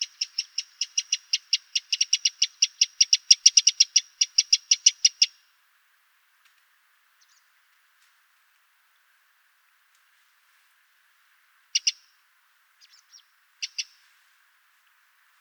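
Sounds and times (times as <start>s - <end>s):
Eurasian wren ticking call: 0.0s - 5.4s, 11.7s - 12.2s, 12.8s - 14.0s.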